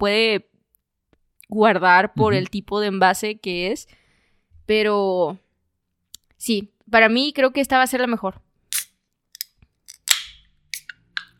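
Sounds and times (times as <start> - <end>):
speech: 0.0 - 0.5, 1.5 - 4.0, 4.7 - 5.4, 6.4 - 8.4
aluminum can of water being opened: 8.7 - 11.3.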